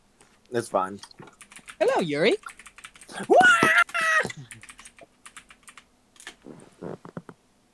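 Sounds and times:
speech: 0:00.5 - 0:04.5
rapid uneven clicking of computer keyboard keys: 0:01.0 - 0:06.4.

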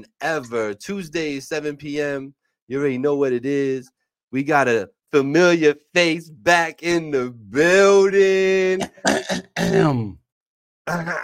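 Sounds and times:
speech: 0:00.0 - 0:10.2, 0:10.9 - 0:11.2
man clearing his throat: 0:08.8 - 0:10.2.

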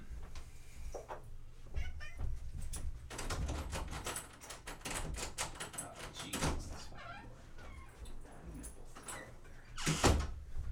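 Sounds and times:
clattering noises: 0:00.2 - 0:10.7
cat chewing on a cable meowing: 0:01.8 - 0:02.3.

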